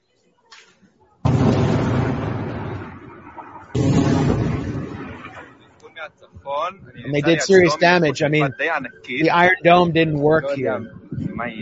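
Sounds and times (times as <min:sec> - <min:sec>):
rockets fired from Lebanon exploding in northern Israel: 0:01.2 - 0:05.8
speech: 0:06.0 - 0:11.6
laughter: 0:07.0 - 0:10.9.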